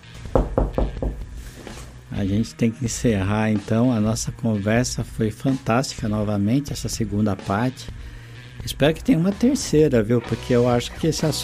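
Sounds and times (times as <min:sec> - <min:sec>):
knocks on a wooden studio door: 0:00.3 - 0:01.3
speech: 0:00.4 - 0:00.8, 0:02.2 - 0:11.4.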